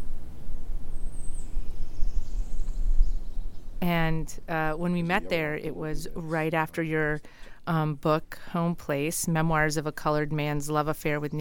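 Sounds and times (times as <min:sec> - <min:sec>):
faint yellow-throated warbler falling song: 0:00.0 - 0:05.2
low outdoor rumble: 0:00.0 - 0:11.3
speech: 0:03.8 - 0:11.3.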